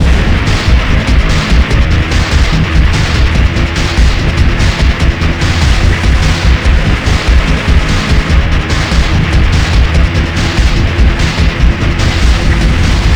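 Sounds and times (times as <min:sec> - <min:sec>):
chase music: 0:00.0 - 0:13.1.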